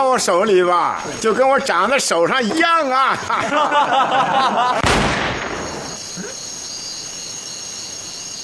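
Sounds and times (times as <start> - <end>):
speech: 0.0 - 5.4
laughter: 1.8 - 4.9
Browning pistol firing accidentally: 4.8 - 6.0.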